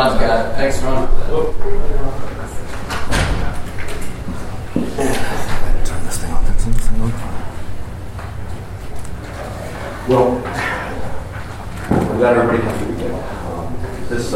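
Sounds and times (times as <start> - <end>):
speech: 0.0 - 3.0, 10.1 - 10.6, 12.2 - 13.4, 14.1 - 14.3
murmur of voices as a class gathers: 0.0 - 14.3
door pulled shut with knocks and a thud: 2.8 - 4.1.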